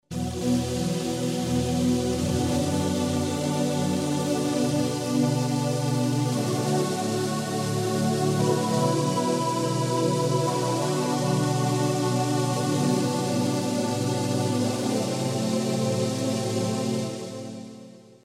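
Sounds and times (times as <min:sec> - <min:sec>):
Yamaha TG-500 choir air voice pad: 0:00.1 - 0:18.2.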